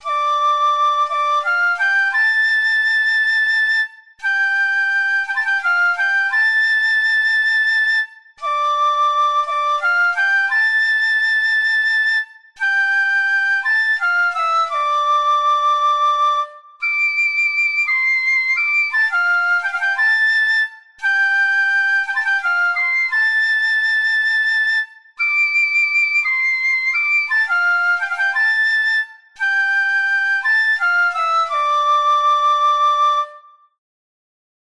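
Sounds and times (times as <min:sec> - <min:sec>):
shinobue Japanese flute: 0:00.0 - 0:33.8.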